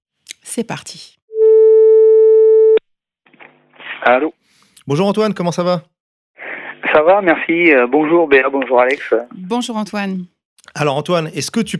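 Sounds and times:
speech: 0.5 - 1.2, 4.0 - 5.9, 6.9 - 11.7
telephone ringing tone as a call is placed: 1.3 - 2.8.

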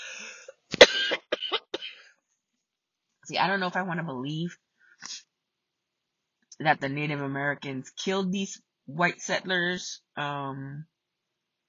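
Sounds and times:
faint breathy hiss: 0.0 - 1.2
harsh raspy coughing: 0.0 - 2.1
speech: 3.3 - 5.2, 6.6 - 10.9.

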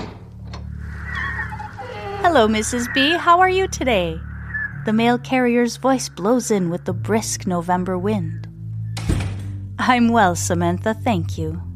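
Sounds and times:
shop door creaking open with squeaky groan: 0.0 - 2.6
steady low hum: 0.0 - 11.7
speech: 2.2 - 8.4, 9.8 - 11.7.

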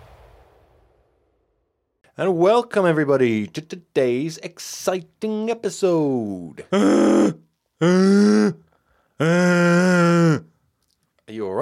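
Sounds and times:
speech: 2.2 - 8.6, 9.2 - 10.4
person vocally imitating a dragon snoring with rasping growls: 6.7 - 8.6, 9.2 - 10.4.

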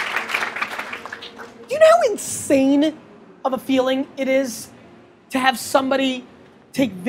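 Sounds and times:
crowd applauding in a dense wash of clapping: 0.0 - 1.7
speech: 1.8 - 7.0.

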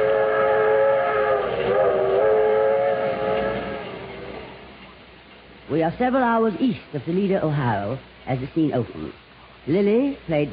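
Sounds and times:
long sustained passenger train whistle: 0.0 - 4.0
passenger train rumbling along the rails: 0.0 - 10.5
speech: 5.7 - 10.5.

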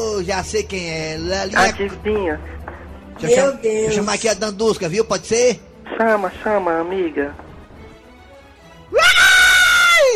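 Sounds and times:
speech: 0.0 - 7.4
loud high-pitched scream: 9.0 - 10.1.

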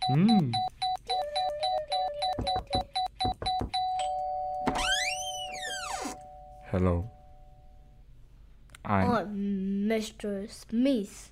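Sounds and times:
held tone: 0.0 - 8.0
speech: 0.1 - 0.7, 6.7 - 7.2, 8.9 - 11.3
electronic doorbell ding-dong chime: 2.2 - 7.8.

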